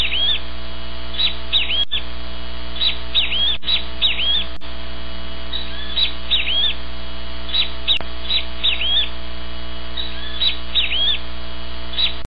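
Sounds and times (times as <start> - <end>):
great kiskadee calling: 0.0 - 4.6, 5.4 - 9.2, 9.8 - 11.3, 11.9 - 12.2
low background hum: 0.0 - 12.2
sharp clicks: 7.9 - 8.2.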